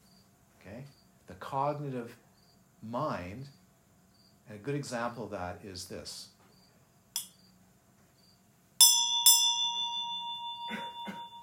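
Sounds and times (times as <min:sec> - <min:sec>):
speech: 0:01.5 - 0:02.2, 0:02.8 - 0:03.6, 0:04.5 - 0:06.3
small bell struck, clear metallic tone ringing: 0:08.8 - 0:11.4.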